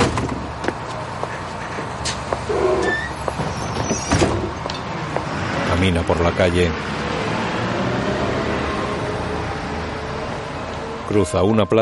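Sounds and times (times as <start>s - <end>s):
bus doors opening with clunks and a hiss: 0.0s - 5.3s
steady bus engine rumble: 0.0s - 11.4s
street noise: 0.0s - 11.8s
speech: 5.8s - 7.1s, 11.1s - 11.8s.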